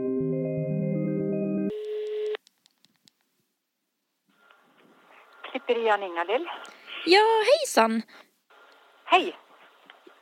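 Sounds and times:
telephone ringing tone over the line to a hairdresser: 0.2 - 2.4
hiss of open telephone line noise: 4.3 - 10.1
speech: 5.5 - 8.3, 9.1 - 9.4.

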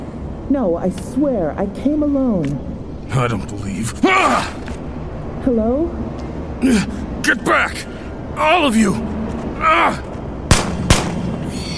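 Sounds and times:
speech: 0.5 - 4.6, 5.4 - 10.1
person shouting: 4.0 - 4.6, 9.6 - 10.0
gunshots: 10.5 - 11.5.

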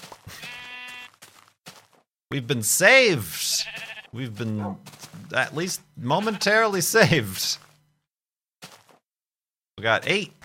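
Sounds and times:
sheep bleating: 0.3 - 1.2, 3.2 - 4.9, 6.0 - 6.8
speech: 2.3 - 7.6, 9.8 - 10.4.

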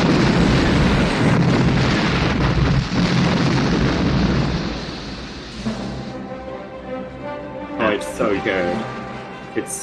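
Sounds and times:
crackling debris from hangar explosion: 0.0 - 6.1
film explosion of an aircraft hangar blowing up at a base: 0.0 - 6.3
speech: 8.4 - 9.0, 9.6 - 9.8.

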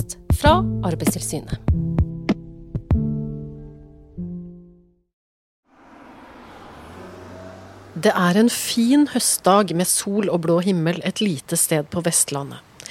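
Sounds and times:
speech: 0.0 - 1.8, 8.0 - 12.7
several car engines idling: 5.7 - 9.8
steady outdoor hiss on a sunny autumn day in western Norway: 7.0 - 12.8.

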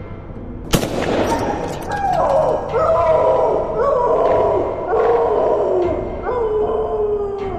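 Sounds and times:
gunshot: 0.7 - 2.0
dog howling in pain: 1.3 - 7.5.

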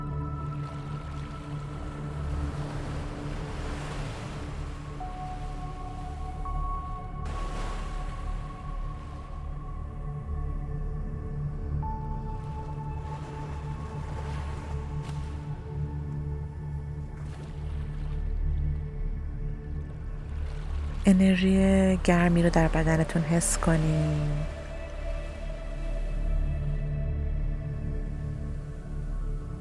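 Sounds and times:
faint sustained tonal hums: 0.0 - 29.5
sea waves rushing: 0.6 - 9.7, 12.4 - 15.8, 20.4 - 26.2
speech: 21.1 - 24.5.

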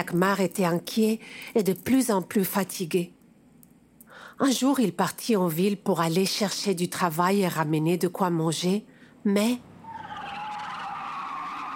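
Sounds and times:
speech: 0.0 - 3.2, 4.4 - 9.7
truck tires squealing while skidding hard: 9.8 - 11.7.

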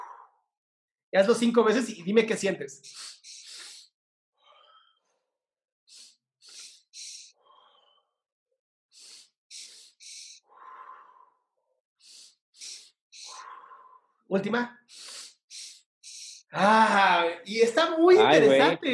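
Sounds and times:
person doing a breathing exercise with double nasal inhales and long exhales: 0.0 - 0.5, 2.8 - 5.0, 5.9 - 8.2, 8.9 - 14.2, 14.8 - 16.5
speech: 1.1 - 3.4, 14.3 - 14.8, 16.5 - 18.9.

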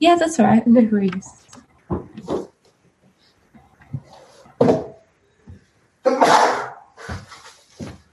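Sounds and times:
speech: 0.0 - 2.0, 4.6 - 4.9
sneeze: 6.1 - 7.2
sniffs: 6.4 - 7.6.

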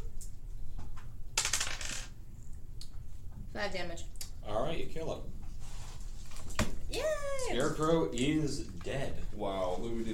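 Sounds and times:
die clattering across a hard tabletop: 1.4 - 2.2
speech: 3.6 - 5.4, 6.9 - 10.1.

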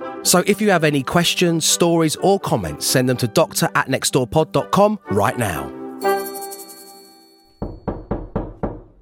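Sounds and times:
speech: 0.2 - 6.1
sustained ringing chime: 6.0 - 8.1
firm knocking on a door: 7.6 - 9.0.

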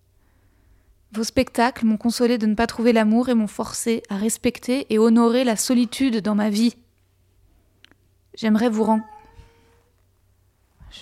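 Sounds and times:
speech: 1.1 - 6.8, 8.4 - 9.1
agitated cat meowing while running around: 8.8 - 9.9.

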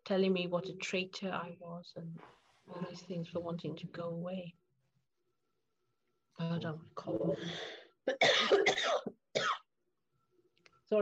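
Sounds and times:
speech: 0.1 - 4.6, 6.4 - 9.5
person coughing in short harsh bursts: 8.1 - 9.6.

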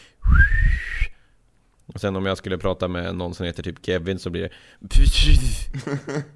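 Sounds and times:
human whistle imitating a dolphin signature whistle: 0.2 - 1.2
speech: 2.0 - 6.3.

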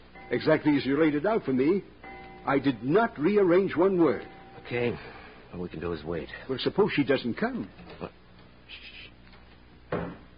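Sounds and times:
speech: 0.3 - 8.9
door closing with a solid thud: 9.9 - 10.3.

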